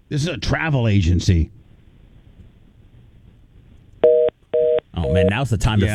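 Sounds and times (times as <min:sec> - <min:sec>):
speech: 0:00.1 - 0:01.6, 0:05.4 - 0:05.9
short touch-tone beeps from a telephone keypad: 0:04.0 - 0:05.4.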